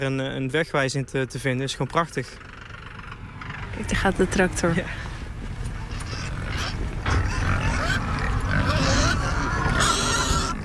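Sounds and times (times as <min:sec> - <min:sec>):
speech: 0:00.0 - 0:02.6, 0:03.8 - 0:05.1
noisy outdoor background in a field: 0:00.0 - 0:10.6
pigs grunting in a field: 0:02.3 - 0:10.6.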